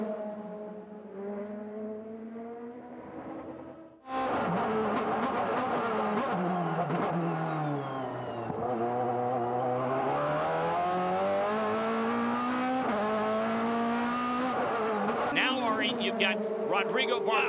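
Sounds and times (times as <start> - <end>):
race car engines roaring down a straightaway: 0.0 - 17.4
faint talk: 15.4 - 17.4
speech: 16.0 - 17.4.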